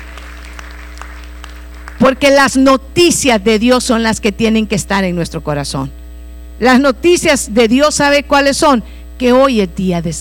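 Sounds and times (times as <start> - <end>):
audience applauding at a church service: 0.0 - 2.0
speech: 2.1 - 6.0, 6.6 - 10.1.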